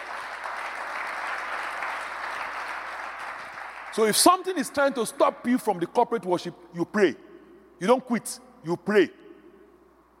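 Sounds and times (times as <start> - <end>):
audience applauding: 0.0 - 4.3
speech: 4.0 - 7.2, 7.8 - 9.2.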